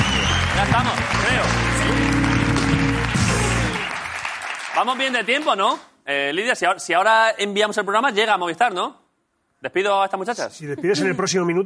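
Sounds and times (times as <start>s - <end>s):
studio audience applause for a guest: 0.0s - 5.6s
speech: 0.6s - 2.3s, 4.8s - 9.0s, 9.6s - 11.6s.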